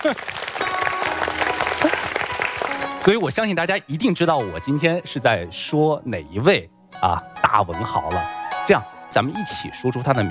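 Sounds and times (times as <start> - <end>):
speech: 0.0 - 0.6, 3.1 - 10.2
audience applauding themselves at a lecture on classical Chinese poetry: 0.0 - 3.4.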